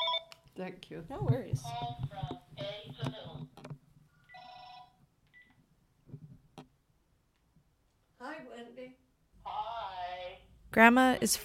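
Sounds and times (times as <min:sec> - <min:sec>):
steady electronic telephone tone: 0:00.0 - 0:00.3, 0:04.3 - 0:05.6
speech: 0:00.6 - 0:03.6, 0:10.8 - 0:11.4.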